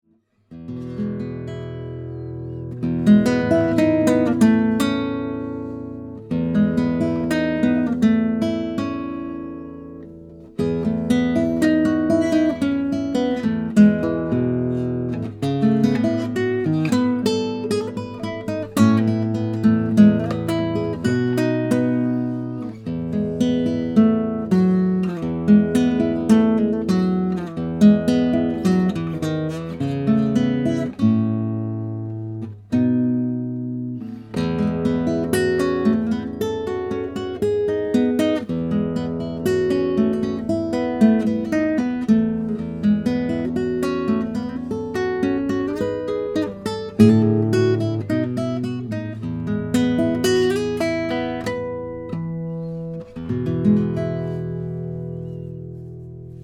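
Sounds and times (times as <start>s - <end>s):
nylon guitar recorded with Oktava ML219X cardioid condenser: 0.4s - 56.4s.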